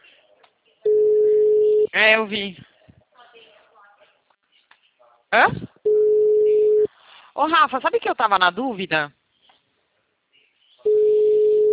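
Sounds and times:
telephone ringing tone on a call to a client: 0:00.9 - 0:01.9, 0:05.9 - 0:06.9, 0:10.9 - 0:11.7
speech: 0:02.0 - 0:02.7, 0:05.3 - 0:05.7, 0:07.4 - 0:09.2.

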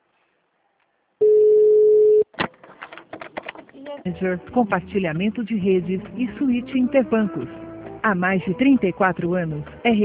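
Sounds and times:
telephone ringing tone on an outgoing call: 0:01.2 - 0:02.2
speech: 0:04.0 - 0:10.0.

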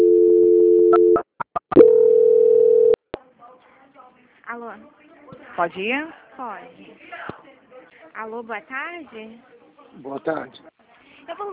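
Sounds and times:
telephone line tones during a call transfer: 0:00.0 - 0:01.2, 0:01.8 - 0:03.0
speech: 0:05.6 - 0:07.1, 0:08.2 - 0:10.7, 0:11.3 - 0:11.5.

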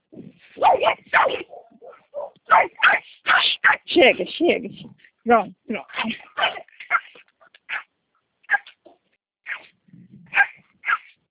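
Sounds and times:
dogs barking in the street: 0:00.6 - 0:03.9, 0:06.0 - 0:07.9, 0:10.3 - 0:11.2
speech: 0:00.7 - 0:01.6, 0:04.0 - 0:06.2.

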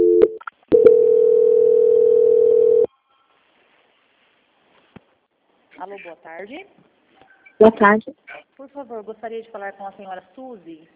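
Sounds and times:
telephone call transfer tone: 0:00.0 - 0:03.3
speech: 0:05.9 - 0:06.9, 0:07.6 - 0:10.9.

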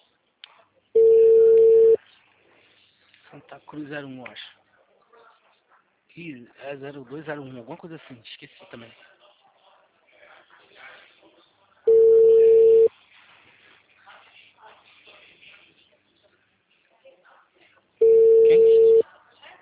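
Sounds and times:
telephone call ringing tone while lines are busy: 0:01.0 - 0:02.0, 0:11.9 - 0:12.9, 0:18.0 - 0:19.0
speech: 0:03.5 - 0:04.6, 0:06.2 - 0:09.1.

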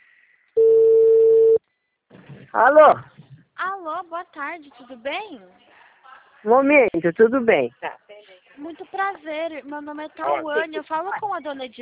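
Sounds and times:
telephone ringback tone while placing a call: 0:00.6 - 0:01.6
speech: 0:02.5 - 0:03.2, 0:03.8 - 0:05.7, 0:06.4 - 0:11.8.

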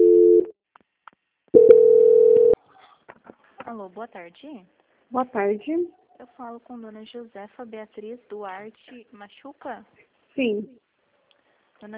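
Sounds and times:
telephone tones marking a call being transferred: 0:01.6 - 0:02.6
speech: 0:03.8 - 0:10.8.

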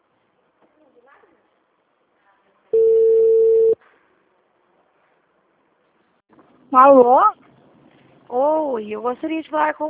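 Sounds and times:
telephone ringback tone while a call is being returned: 0:02.8 - 0:03.8
speech: 0:06.7 - 0:07.4, 0:08.3 - 0:09.8.

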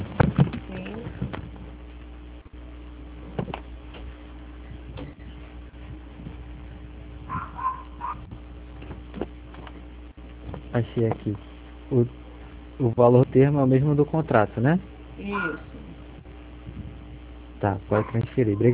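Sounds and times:
steady low hum: 0:00.0 - 0:18.7
dog giving yappy barks: 0:07.3 - 0:08.3, 0:17.9 - 0:18.7
speech: 0:10.8 - 0:12.2, 0:12.8 - 0:15.7, 0:17.6 - 0:18.7.

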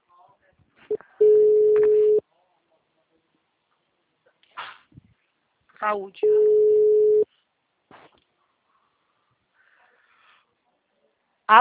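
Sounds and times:
telephone line tone after a dropped call: 0:01.2 - 0:02.2, 0:06.2 - 0:07.2
speech: 0:05.8 - 0:06.6.

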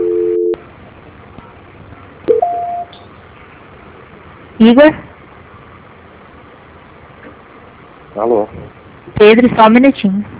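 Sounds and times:
telephone line tone during a call transfer: 0:00.0 - 0:00.6
higher steady telephone beep: 0:02.3 - 0:03.0
speech: 0:04.6 - 0:05.1, 0:08.2 - 0:10.3.

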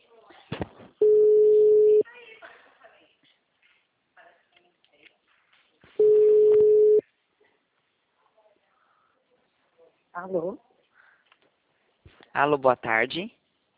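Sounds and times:
ringback tone on a phone call: 0:01.0 - 0:02.0, 0:06.0 - 0:07.0
speech: 0:10.2 - 0:10.7, 0:12.4 - 0:13.4.

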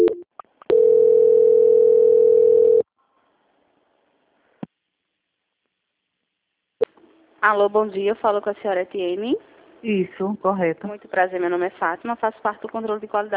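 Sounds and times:
telephone line tone during a call transfer: 0:00.0 - 0:02.8
speech: 0:07.4 - 0:13.3.

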